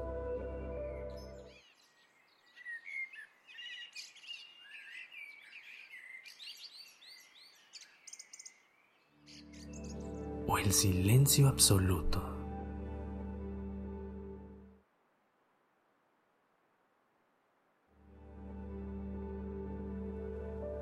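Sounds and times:
low musical drone: 0.0s - 1.6s, 9.5s - 14.8s, 18.0s - 20.8s
birds chirping and warbling: 0.7s - 12.2s
speech: 10.5s - 12.3s.

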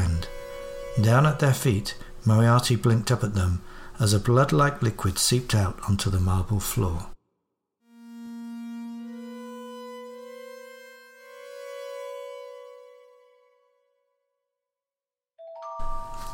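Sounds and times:
speech: 1.0s - 7.1s
two-note incoming message notification chime: 15.4s - 16.3s.

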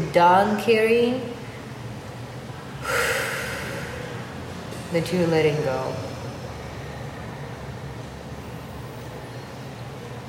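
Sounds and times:
speech: 0.1s - 1.4s, 4.9s - 6.1s
deep breath exhaled during a breathing meditation exercise: 2.8s - 4.2s.

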